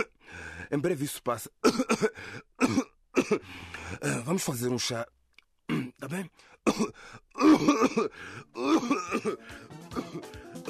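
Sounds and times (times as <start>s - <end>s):
speech: 0.7s - 10.6s
harsh raspy coughs: 1.6s - 3.5s, 5.7s - 6.0s, 6.7s - 10.6s.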